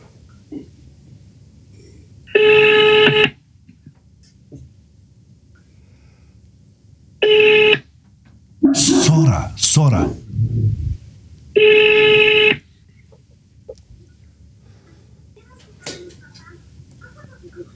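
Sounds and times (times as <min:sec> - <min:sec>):
faint hum on a telephone line: 0:00.0 - 0:17.7
speech: 0:00.5 - 0:00.8, 0:09.2 - 0:10.7
telephone ringing tone down the line: 0:02.3 - 0:03.4, 0:07.2 - 0:07.8, 0:11.6 - 0:12.6.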